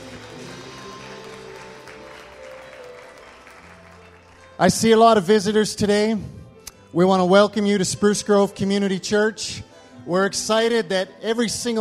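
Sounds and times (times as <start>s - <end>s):
audience clapping: 0.0s - 5.0s
speech: 4.6s - 11.7s.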